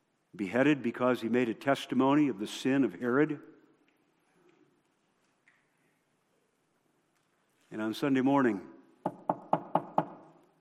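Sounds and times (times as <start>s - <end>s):
speech: 0.4s - 3.5s, 7.8s - 9.2s
firm knocks on a wooden door: 9.0s - 10.2s.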